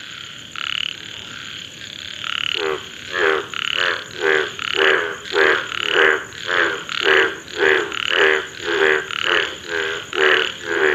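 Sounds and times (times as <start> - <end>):
Indian bullfrog croaking mating call in India: 0.0 - 10.9.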